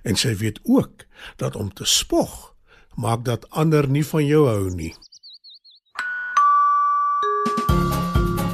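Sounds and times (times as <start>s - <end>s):
speech: 0.0s - 5.1s
bright two-note ding-dong bell chime: 5.9s - 8.4s.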